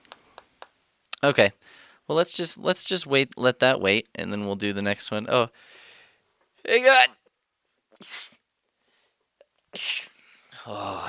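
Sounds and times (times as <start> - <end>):
speech: 1.2 - 5.8, 6.6 - 7.2, 8.0 - 8.4, 9.7 - 11.0
faint inhale: 1.6 - 2.1, 5.6 - 6.3, 8.8 - 9.2
person sneezing: 8.0 - 8.4, 9.7 - 10.2.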